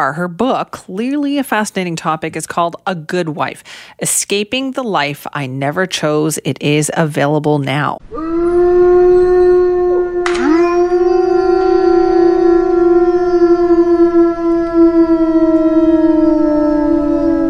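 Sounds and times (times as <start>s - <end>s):
speech: 0.0s - 9.6s
wolf howling: 8.0s - 17.4s.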